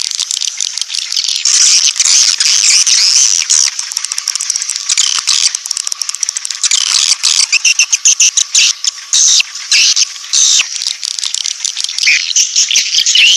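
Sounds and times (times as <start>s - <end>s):
swiftlets chirping: 0.3s - 13.3s.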